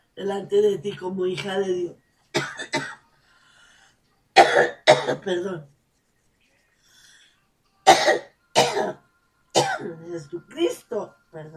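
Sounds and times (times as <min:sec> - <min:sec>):
speech: 0:00.2 - 0:02.0, 0:05.1 - 0:05.7, 0:09.8 - 0:11.5
person coughing short harsh coughs: 0:02.4 - 0:03.0, 0:04.4 - 0:05.3, 0:07.9 - 0:09.0, 0:09.6 - 0:09.9.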